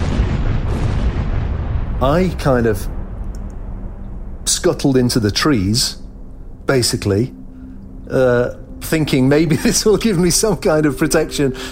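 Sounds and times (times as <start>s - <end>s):
loud deep explosive booms: 0.0s - 6.7s
speech: 2.0s - 3.0s, 4.6s - 6.0s, 6.7s - 7.4s, 8.1s - 11.7s.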